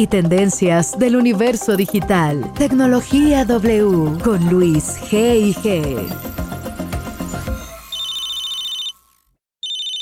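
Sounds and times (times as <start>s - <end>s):
speech: 0.0s - 6.4s
telephone ringing: 7.6s - 9.9s.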